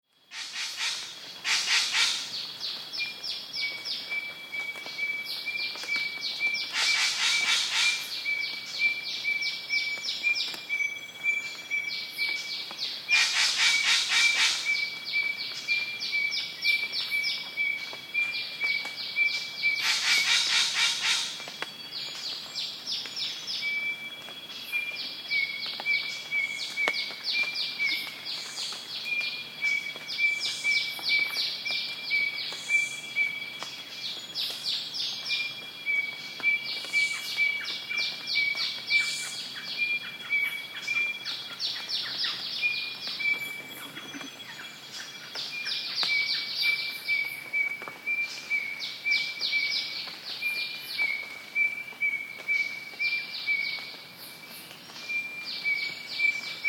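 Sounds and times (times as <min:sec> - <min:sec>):
rainforest ambience in Queensland: 0:00.0 - 0:56.6.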